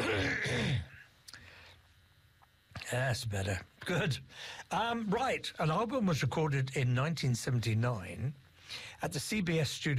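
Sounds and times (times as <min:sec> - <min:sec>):
man's quick cough: 0:00.0 - 0:01.0
speech: 0:02.9 - 0:09.9.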